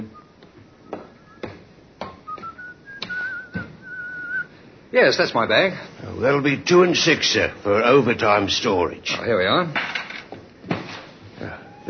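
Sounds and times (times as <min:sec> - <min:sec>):
man whistling a wavering sliding tune: 0:00.0 - 0:01.6, 0:02.2 - 0:04.6
speech: 0:04.9 - 0:10.0.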